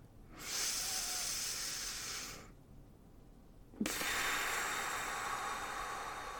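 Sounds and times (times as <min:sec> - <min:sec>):
slow deep breathing during a guided breathing exercise: 0:00.2 - 0:02.6, 0:03.8 - 0:06.3.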